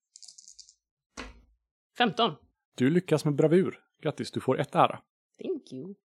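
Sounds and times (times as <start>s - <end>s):
dice rattling in a hand or cup: 0.1s - 0.7s
speech: 2.0s - 6.0s.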